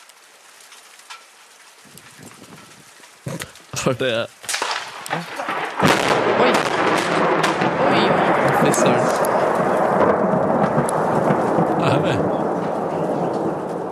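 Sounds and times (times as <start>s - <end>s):
heavy rain in a thunderstorm in Førde: 0.0s - 13.9s
thunder rumbling during a heavy thunderstorm in Førde: 1.9s - 13.9s
speech: 3.8s - 4.3s, 8.6s - 9.8s.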